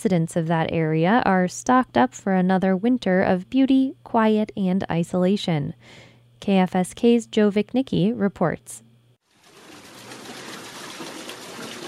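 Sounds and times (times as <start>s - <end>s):
speech: 0.0s - 8.8s
creek water falling onto a wooden water wheel: 9.3s - 11.8s.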